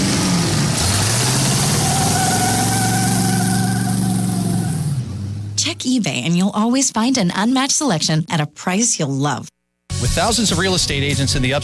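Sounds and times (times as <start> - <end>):
supercharged car engine revving and idling: 0.0 - 5.6
speech: 5.8 - 11.6.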